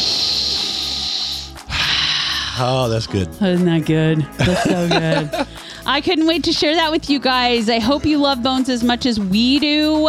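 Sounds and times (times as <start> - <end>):
airy hiss of air forced out of a squeezed coffee bag: 0.0 - 2.8
speech: 2.6 - 10.0
laughter: 4.4 - 5.6.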